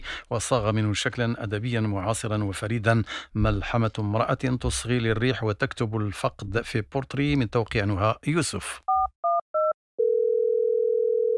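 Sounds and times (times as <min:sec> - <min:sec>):
speech: 0:00.3 - 0:08.9
two-tone telephone beeps as receiver is lifted: 0:08.9 - 0:11.3
telephone dial tone: 0:09.2 - 0:11.3.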